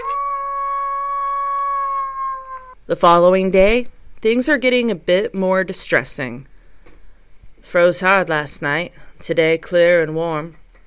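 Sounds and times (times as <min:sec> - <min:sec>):
wolf howling: 0:00.0 - 0:02.8
speech: 0:02.9 - 0:06.5, 0:07.6 - 0:10.6.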